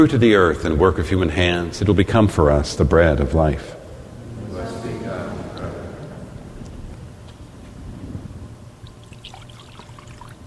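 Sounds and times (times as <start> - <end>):
speech: 0.0 - 3.8
low rumbling hum: 0.0 - 10.4
water poured into a chalice: 8.8 - 10.4.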